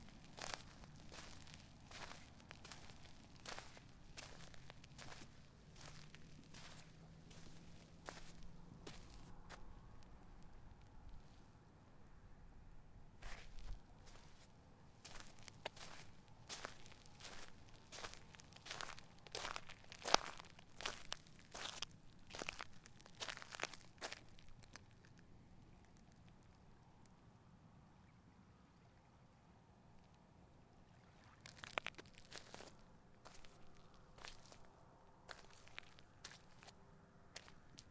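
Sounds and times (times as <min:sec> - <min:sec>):
crunching footsteps on a causeway in southwest Florida: 0:00.0 - 0:11.3, 0:13.2 - 0:24.9, 0:31.5 - 0:36.8, 0:37.4 - 0:37.9.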